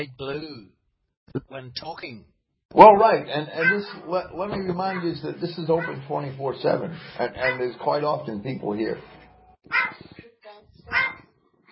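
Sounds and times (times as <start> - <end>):
speech: 0.0 - 10.2
dog barking harshly: 3.6 - 4.0, 5.8 - 6.1, 7.4 - 7.7, 9.7 - 10.0, 10.9 - 11.3.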